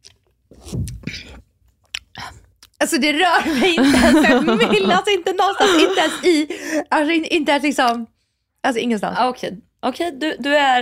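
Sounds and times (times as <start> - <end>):
person sipping coffee: 0.0 - 2.7
wet slurping and lip-smacking with a gulp: 0.0 - 2.8
speech: 2.8 - 10.7
laughter: 3.4 - 6.8.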